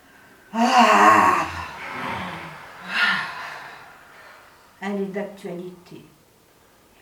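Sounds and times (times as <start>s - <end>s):
deep breathing in and out: 0.0s - 4.8s
speech: 5.1s - 6.2s.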